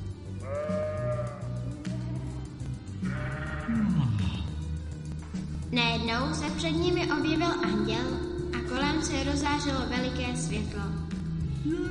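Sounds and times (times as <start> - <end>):
sheep bleating: 0.4 - 1.6, 3.0 - 4.2
deeper animal noises: 0.4 - 2.3, 3.0 - 4.8
speech: 5.7 - 11.8.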